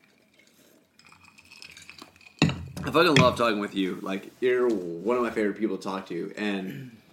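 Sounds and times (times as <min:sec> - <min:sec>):
glasses clinking together in a toast: 0:01.1 - 0:03.4
speech: 0:02.9 - 0:07.0.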